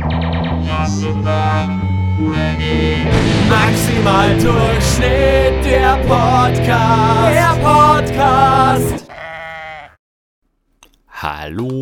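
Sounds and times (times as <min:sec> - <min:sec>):
speech: 0:00.9 - 0:09.1, 0:11.2 - 0:11.8
sheep bleating with a wavering nasal tone: 0:08.6 - 0:10.0.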